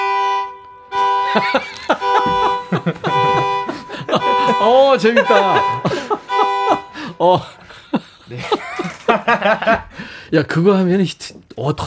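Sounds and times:
violin imitating a car horn with a blaring bowed tone: 0.0s - 7.4s
people laughing: 1.0s - 10.1s
speech: 1.3s - 2.0s, 2.7s - 3.1s, 4.6s - 6.0s, 7.2s - 7.6s, 9.1s - 11.8s.

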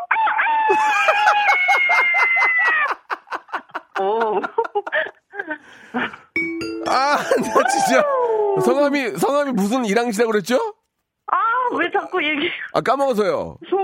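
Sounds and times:
person loudly imitating a loud-voiced rooster's crow: 0.1s - 2.8s, 7.3s - 8.9s
people chuckling: 0.7s - 6.3s, 6.9s - 8.3s
person bursting into laughter: 0.7s - 6.3s, 6.9s - 8.7s
speech: 4.3s - 6.2s, 6.9s - 10.7s, 12.1s - 13.7s.

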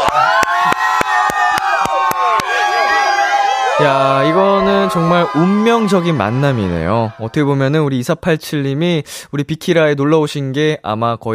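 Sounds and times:
sharp hands clapping: 0.0s - 2.6s
loud crowd cheering and whooping: 0.0s - 7.7s
speech: 3.8s - 11.3s.

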